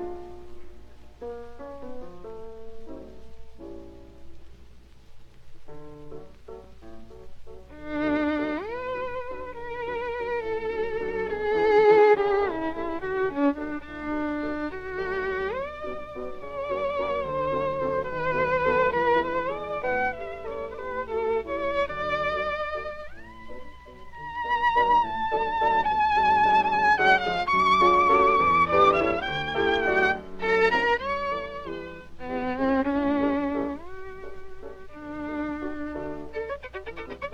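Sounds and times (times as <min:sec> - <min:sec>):
violin playing live: 0:07.7 - 0:37.3.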